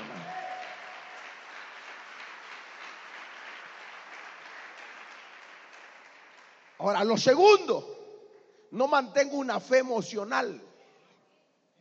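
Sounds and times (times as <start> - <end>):
large crowd applauding: 0.0 - 7.4
speech: 6.8 - 8.0, 8.7 - 10.7.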